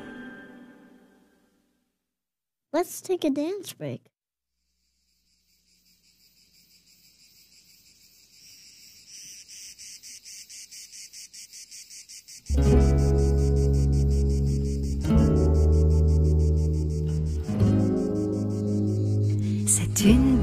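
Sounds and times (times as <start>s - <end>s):
speech: 2.7s - 4.1s, 20.0s - 20.4s
cicadas chirping on a summer day in the south: 4.6s - 20.4s.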